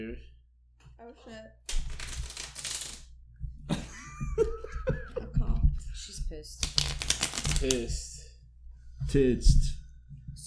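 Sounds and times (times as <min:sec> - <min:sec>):
speech: 0:00.0 - 0:00.3, 0:01.0 - 0:02.0, 0:06.3 - 0:06.8, 0:07.6 - 0:08.1, 0:09.1 - 0:09.7
deck of playing cards being riffled: 0:01.7 - 0:03.1, 0:06.6 - 0:07.9
laughter: 0:03.7 - 0:05.5.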